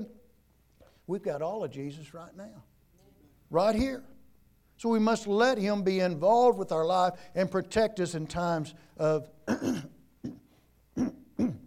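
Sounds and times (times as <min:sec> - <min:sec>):
speech: 0:01.1 - 0:02.7, 0:03.5 - 0:04.1, 0:04.8 - 0:10.4
person with a broken rib clearing throat: 0:09.5 - 0:11.6.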